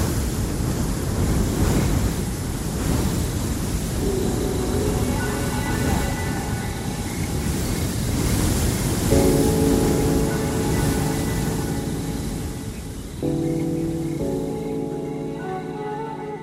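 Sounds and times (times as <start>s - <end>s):
wind buffeting the microphone: 0.0s - 13.3s
ocean surf crashing: 0.0s - 16.2s.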